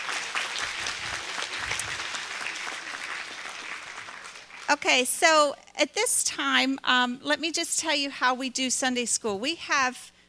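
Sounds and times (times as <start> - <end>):
room full of people applauding: 0.0 - 4.8
speech: 4.7 - 10.1.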